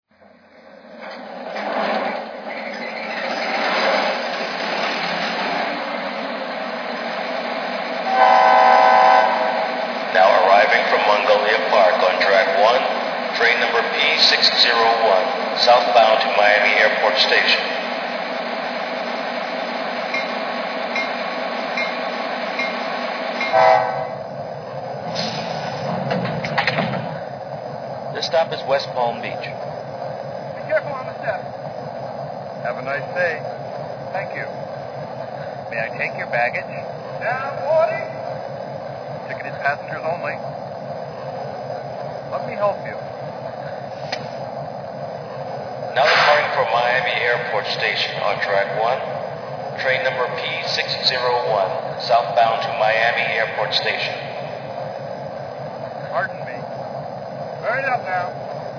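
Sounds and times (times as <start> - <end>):
F40PH locomotive: 0.1 - 58.7.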